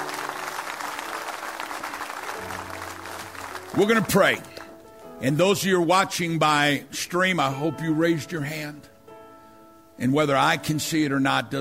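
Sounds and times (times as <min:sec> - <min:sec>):
audience applauding: 0:00.0 - 0:04.9
speech: 0:03.7 - 0:04.5, 0:05.2 - 0:08.9, 0:10.0 - 0:11.5.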